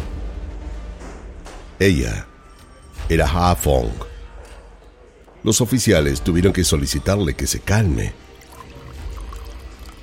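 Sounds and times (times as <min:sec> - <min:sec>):
speech: 0:01.8 - 0:02.3, 0:03.1 - 0:04.1, 0:05.4 - 0:08.3
water pouring into a glass: 0:08.1 - 0:10.0.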